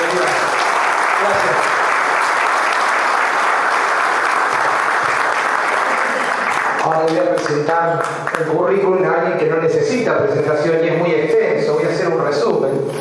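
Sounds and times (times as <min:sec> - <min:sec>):
audience applause welcoming someone to the stage: 0:00.0 - 0:08.6
speech: 0:07.1 - 0:13.0.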